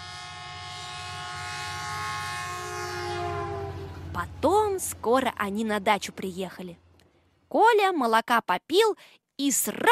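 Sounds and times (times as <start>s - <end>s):
train horn blaring: 0.0s - 4.8s
low rumble of a moving train: 0.0s - 7.0s
speech: 4.2s - 6.8s, 7.5s - 9.9s.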